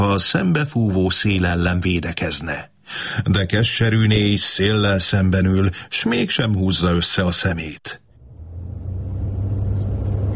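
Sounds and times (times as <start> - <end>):
speech: 0.2 - 8.0
car engine rumbling while climbing an uphill road: 8.0 - 10.3.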